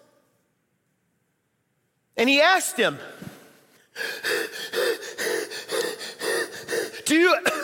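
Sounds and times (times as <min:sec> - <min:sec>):
speech: 0:02.2 - 0:03.3, 0:04.0 - 0:04.7
man panting hard and fast, as if after running: 0:03.9 - 0:07.4.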